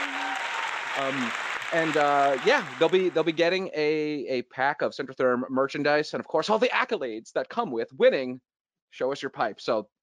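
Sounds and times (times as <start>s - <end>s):
person cheering: 0.0s - 3.2s
crowd clapping: 0.0s - 3.6s
speech: 1.0s - 10.0s.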